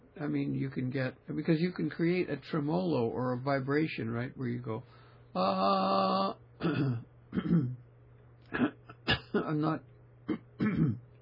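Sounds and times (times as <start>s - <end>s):
steady low electrical hum: 0.0s - 11.2s
speech: 0.2s - 7.8s, 8.5s - 11.0s
throat clearing: 6.6s - 7.8s, 8.5s - 9.5s, 10.3s - 11.1s.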